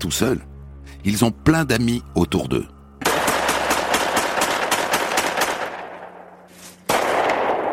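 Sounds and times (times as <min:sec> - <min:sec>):
speech: 0:00.0 - 0:02.8
gunfire from target practice in a forest: 0:03.0 - 0:06.3, 0:06.9 - 0:07.7.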